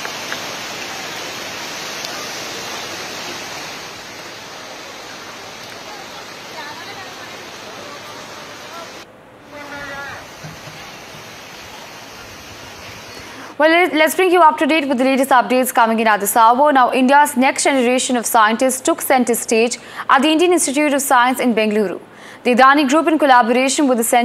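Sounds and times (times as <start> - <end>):
swollen river water rushing after heavy rainfall: 0.0 - 13.6
speech: 13.6 - 24.2.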